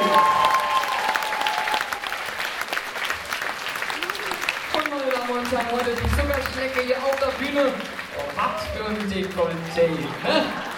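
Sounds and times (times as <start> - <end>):
faint tonal whistle or cheer: 0.0 - 1.8
audience applause: 0.0 - 10.7
speech: 5.5 - 10.7
laughter: 9.9 - 10.7.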